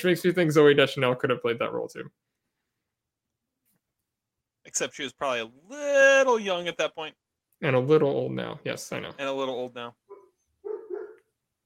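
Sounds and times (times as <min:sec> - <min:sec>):
speech: 0:00.0 - 0:02.4, 0:04.7 - 0:10.0
short two-part dog bark: 0:10.1 - 0:11.3.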